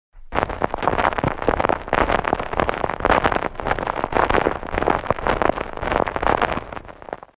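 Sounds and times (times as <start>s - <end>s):
footsteps on snow: 0.2s - 7.3s.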